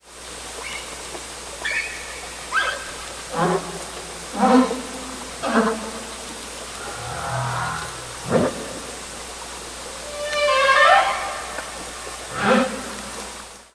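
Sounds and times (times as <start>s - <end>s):
humpback whale sounds: 2.6s - 9.1s, 9.8s - 13.5s.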